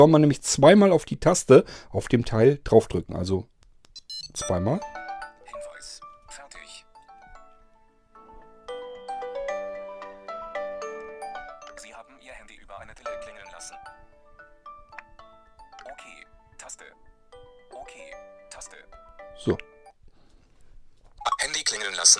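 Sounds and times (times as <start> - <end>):
speech: 0.0 - 3.5, 4.3 - 5.0, 19.4 - 19.7
mobile phone ringtone triggered by tracker: 4.1 - 12.4, 13.0 - 20.0.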